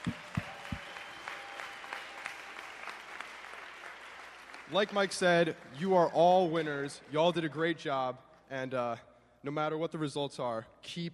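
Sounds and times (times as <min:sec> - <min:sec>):
crowd applause: 0:00.0 - 0:05.3
speech: 0:04.7 - 0:11.1.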